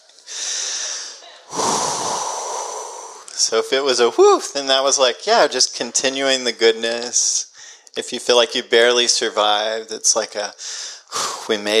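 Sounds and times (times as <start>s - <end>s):
person taking a deep breath slowly: 0.3s - 3.3s, 7.6s - 7.9s, 10.6s - 11.4s
speech: 3.4s - 11.7s.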